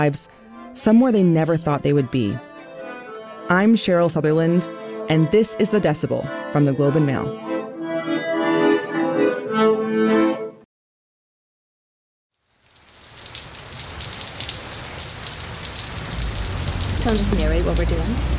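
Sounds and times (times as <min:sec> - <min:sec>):
speech: 0:00.0 - 0:02.5, 0:03.5 - 0:07.5
melodic tones: 0:00.8 - 0:10.6
rain pattering on hard surfaces in front of a school: 0:12.3 - 0:18.3.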